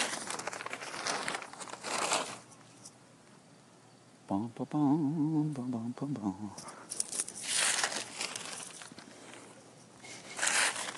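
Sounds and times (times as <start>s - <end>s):
paper blown about by the wind rustling: 0.0s - 2.9s, 6.6s - 10.9s
speech: 4.3s - 6.8s.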